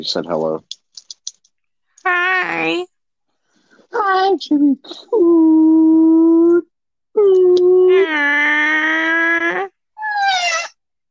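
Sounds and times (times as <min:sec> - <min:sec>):
speech: 0:00.0 - 0:00.8, 0:02.4 - 0:02.9, 0:03.9 - 0:06.2, 0:07.2 - 0:09.6
cat meowing: 0:10.0 - 0:10.8.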